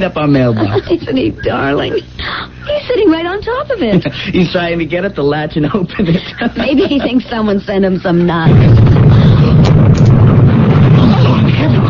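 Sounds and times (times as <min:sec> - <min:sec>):
speech: 0:00.0 - 0:10.0
laughter: 0:00.4 - 0:01.6, 0:05.9 - 0:07.8
mailbox exploding with a loud low roar: 0:08.4 - 0:11.8.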